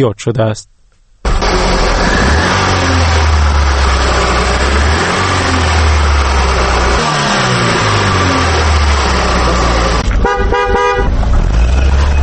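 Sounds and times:
speech: 0:00.0 - 0:00.7
engines rumbling and revving in Dushanbe street traffic: 0:01.3 - 0:12.2
vehicles passing in Dushanbe, Tajikistan: 0:01.3 - 0:12.2
loud car horn honking: 0:09.4 - 0:11.2.

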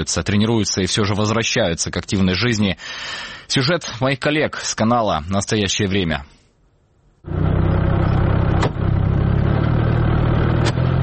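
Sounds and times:
speech: 0:00.0 - 0:06.4
remote mine-laying military vehicle engine roaring: 0:07.2 - 0:11.0.

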